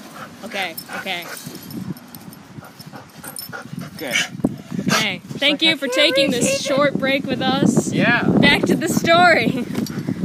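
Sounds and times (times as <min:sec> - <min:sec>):
speech: 0:00.4 - 0:01.6, 0:02.9 - 0:09.8
happy puppy whimpering and yipping: 0:05.6 - 0:06.8.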